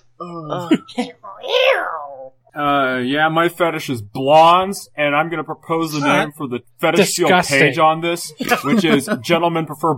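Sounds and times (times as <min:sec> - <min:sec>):
speech: 0:00.2 - 0:02.0, 0:02.6 - 0:09.9
person imitating cat meows: 0:01.4 - 0:02.3, 0:05.9 - 0:06.2
laughter: 0:08.4 - 0:09.5.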